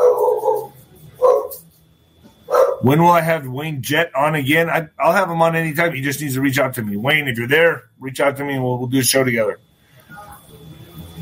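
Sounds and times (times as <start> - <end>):
dogs barking: 0.0 - 1.6, 2.5 - 2.9
speech: 2.8 - 9.7.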